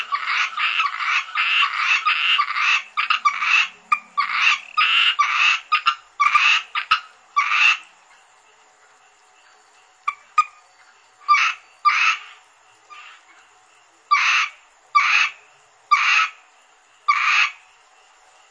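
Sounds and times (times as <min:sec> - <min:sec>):
Asian grass frog Rana limnocharis croaking: 0:00.0 - 0:07.9, 0:10.0 - 0:13.4, 0:14.1 - 0:16.5, 0:17.1 - 0:17.7.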